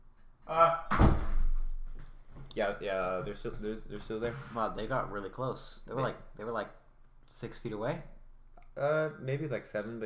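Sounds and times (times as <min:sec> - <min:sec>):
door opening and closing: 0:00.8 - 0:01.8
heavy door thunk with low rumble: 0:00.9 - 0:01.6
speech: 0:02.6 - 0:06.8, 0:07.4 - 0:08.1, 0:08.8 - 0:10.0.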